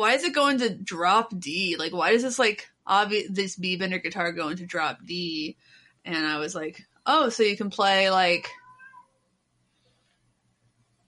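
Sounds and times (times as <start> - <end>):
speech: 0.0 - 8.6
pet cat meowing: 8.5 - 9.2.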